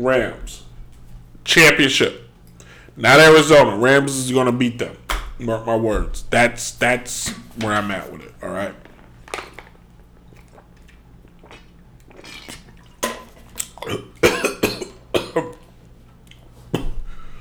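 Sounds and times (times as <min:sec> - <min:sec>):
speech: 0:00.0 - 0:00.6, 0:01.5 - 0:02.2, 0:03.0 - 0:08.8, 0:13.8 - 0:14.1
person coughing after choking on water: 0:13.8 - 0:15.7, 0:16.8 - 0:17.2.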